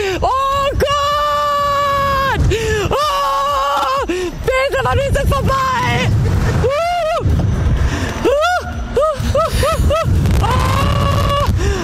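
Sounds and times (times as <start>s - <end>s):
people screaming and shrieking on a swing ride: 0.0s - 4.1s, 5.8s - 7.4s, 8.2s - 11.8s
heavy wind buffeting microphone on a swing ride: 0.0s - 11.8s.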